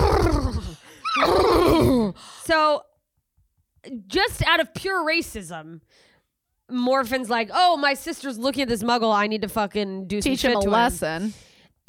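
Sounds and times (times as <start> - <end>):
horse neighing: 0.0 - 1.9
speech: 2.5 - 2.9, 3.8 - 6.1, 6.7 - 11.4.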